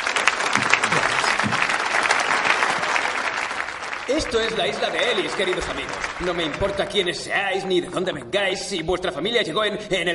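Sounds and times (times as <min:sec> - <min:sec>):
crowd applauding: 0:00.0 - 0:07.3
speech: 0:04.1 - 0:10.1.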